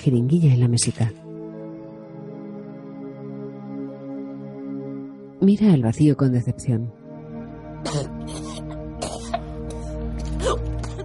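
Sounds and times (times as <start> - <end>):
speech: 0.0 - 1.3, 5.4 - 7.0
woman lying on her back coughing up vomit and choking while convulsing: 7.8 - 11.0.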